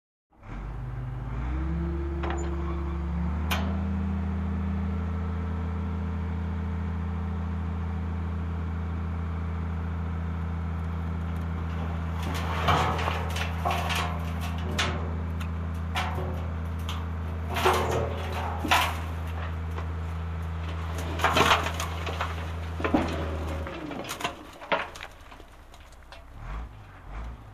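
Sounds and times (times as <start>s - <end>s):
dump truck unloading: 0.4s - 8.6s, 9.3s - 27.5s.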